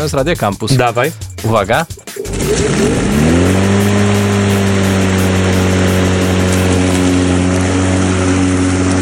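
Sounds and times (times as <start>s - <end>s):
speech: 0.0s - 3.7s
lawnmower engine sputtering to life and droning: 2.2s - 9.0s.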